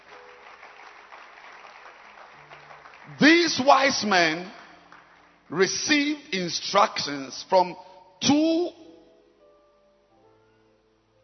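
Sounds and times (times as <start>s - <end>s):
audience clapping hands: 0.0s - 6.2s
speech: 3.1s - 4.6s, 5.5s - 8.4s.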